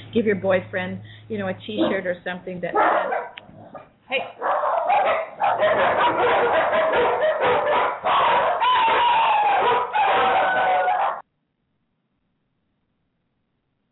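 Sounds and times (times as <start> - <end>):
speech: 0.1 - 9.2
dogs barking: 2.7 - 11.2
rooster crowing: 4.6 - 11.2.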